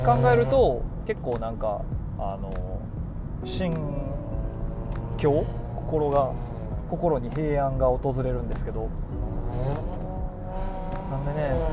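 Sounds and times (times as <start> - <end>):
car engine revving: 0.0 - 0.9, 3.7 - 7.7, 8.6 - 11.7
speech: 0.0 - 4.3, 5.2 - 10.0, 11.1 - 11.7.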